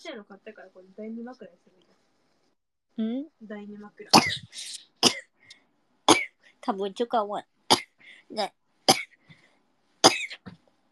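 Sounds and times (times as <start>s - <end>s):
speech: 0.0s - 1.9s, 3.0s - 5.2s, 6.6s - 7.6s, 8.3s - 8.6s
person coughing harshly: 4.1s - 5.3s, 8.9s - 9.2s, 10.0s - 10.6s.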